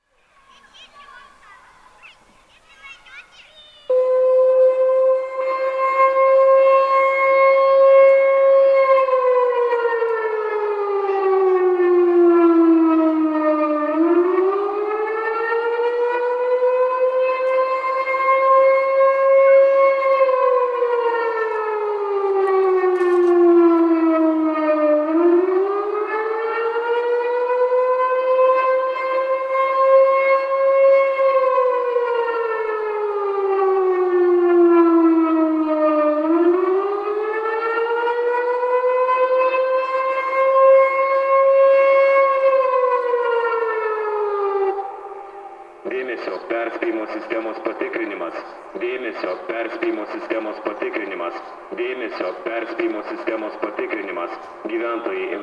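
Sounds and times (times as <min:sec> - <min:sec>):
sirens in Visaginas: 0:03.1 - 0:55.4.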